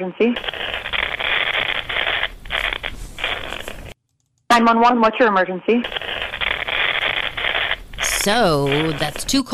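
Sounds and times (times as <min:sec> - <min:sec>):
speech: 0:00.0 - 0:01.0, 0:04.6 - 0:06.2, 0:08.2 - 0:09.5
harsh crackling static over a telephone-like line: 0:00.4 - 0:04.0, 0:05.8 - 0:09.5.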